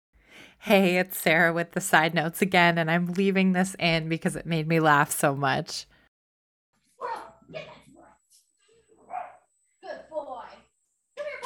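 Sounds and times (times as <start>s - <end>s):
speech: 0.6s - 5.9s, 7.0s - 7.8s
dog barking at a squirrel: 9.0s - 9.5s.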